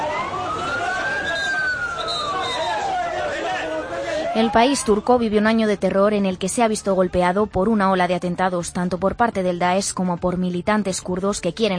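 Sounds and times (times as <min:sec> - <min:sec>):
police or ambulance siren wailing heading to a bomb attack site in Gaziantep: 0:00.0 - 0:05.4
street noise in Gaziantep: 0:00.0 - 0:11.7
speech: 0:04.4 - 0:11.7.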